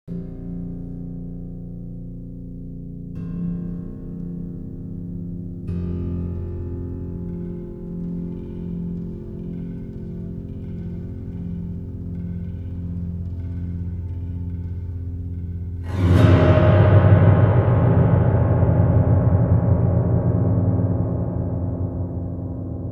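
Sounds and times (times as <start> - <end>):
piano glissando in horror style: 3.3 - 20.0
horror drums: 3.4 - 22.7.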